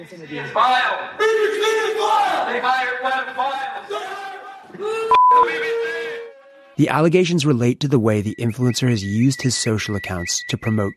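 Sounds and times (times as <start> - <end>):
speech: 0.0 - 6.2, 6.8 - 10.9
loud crowd of many supporters shouting abuse: 0.5 - 6.8
sharp electronic bleep: 5.1 - 5.4, 8.0 - 10.9.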